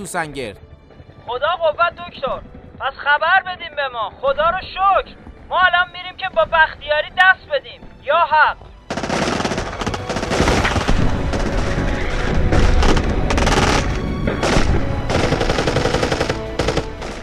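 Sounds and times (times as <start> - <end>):
speech: 0.0 - 0.7, 1.3 - 8.7
machine-gun bursts in a wartime battle scene: 8.9 - 11.6, 12.5 - 17.2
booming gunshots in a wartime battle scene: 8.9 - 17.2.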